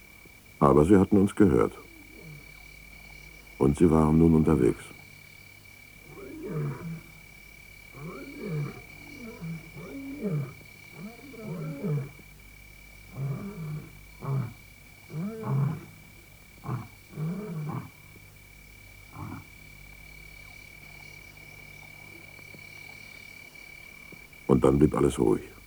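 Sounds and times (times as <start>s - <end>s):
faint steady high whine: 0.0s - 25.6s
speech: 0.6s - 1.9s, 3.6s - 5.0s, 24.6s - 25.6s
lions roaring in the wild: 0.6s - 2.7s, 6.0s - 12.3s, 13.0s - 18.2s, 19.0s - 19.7s.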